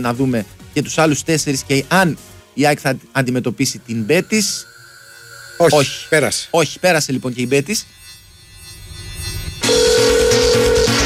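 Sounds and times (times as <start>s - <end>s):
speech: 0.0s - 4.7s, 5.6s - 8.0s
dense musical bed: 0.0s - 11.0s
telephone ringing with a steady electronic tone: 3.7s - 11.0s.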